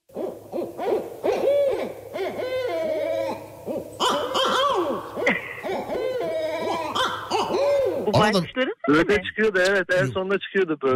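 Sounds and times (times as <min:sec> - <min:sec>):
several owls hooting: 0:00.0 - 0:08.4
speech: 0:08.2 - 0:10.9.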